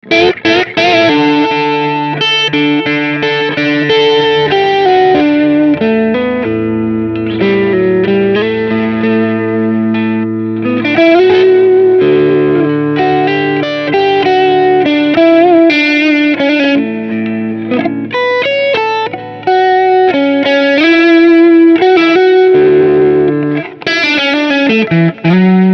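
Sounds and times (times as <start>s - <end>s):
clean warm guitar amp plugin tone: 0.0s - 25.7s.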